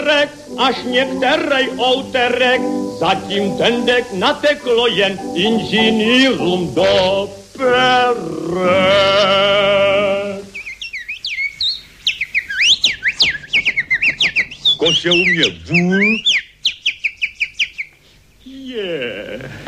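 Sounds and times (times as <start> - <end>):
speech: 0.0 - 10.4, 14.8 - 16.3
common blackbird singing: 0.0 - 18.0
common blackbird sharp bright chirps: 10.5 - 18.0.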